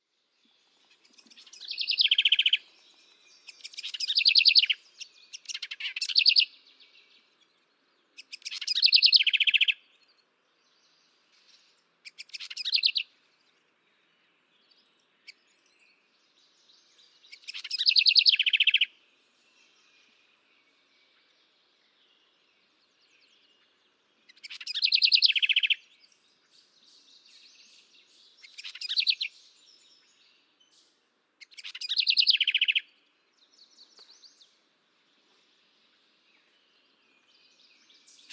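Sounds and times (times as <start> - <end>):
garrincha wren singing: 0.8 - 6.6, 8.2 - 9.8, 12.0 - 13.0, 17.1 - 18.9, 24.2 - 34.6, 35.9 - 38.3.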